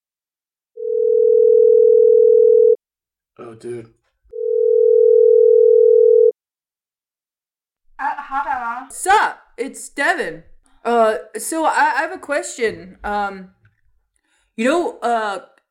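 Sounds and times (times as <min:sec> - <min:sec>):
phone ringback tones on speakerphone: 0:00.8 - 0:02.8, 0:04.3 - 0:06.4
speech: 0:03.5 - 0:04.0, 0:08.0 - 0:13.6, 0:14.6 - 0:15.7.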